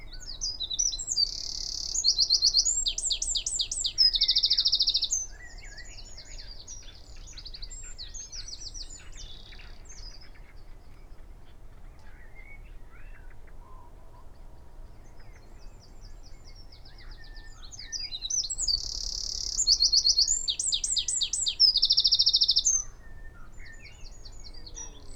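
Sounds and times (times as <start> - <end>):
Eurasian wren Troglodytes troglodytes singing: 0.3 - 10.3, 16.7 - 25.1.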